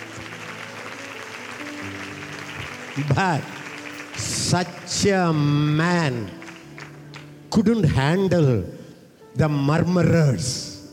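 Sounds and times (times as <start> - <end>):
audience at a sermon clapping: 0.0 - 7.6
speech: 3.0 - 3.6, 4.2 - 6.4, 7.5 - 8.8, 9.4 - 10.7.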